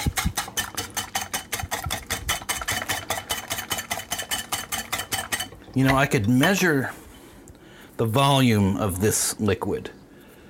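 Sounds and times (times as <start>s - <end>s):
whisk beating an egg mixture: 0.0s - 6.1s
speech: 5.8s - 7.0s, 8.0s - 10.0s.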